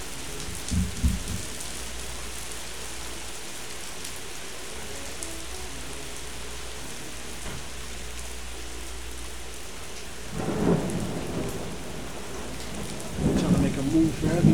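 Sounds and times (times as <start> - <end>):
deep rolls of thunder rumbling: 0.0 - 1.7, 10.2 - 14.5
steady heavy rain: 0.0 - 14.5.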